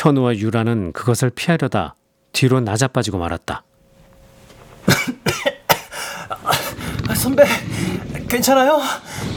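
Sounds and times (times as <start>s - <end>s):
speech: 0.0s - 3.7s, 7.1s - 9.3s
person coughing from dust after falling backward: 4.8s - 7.0s.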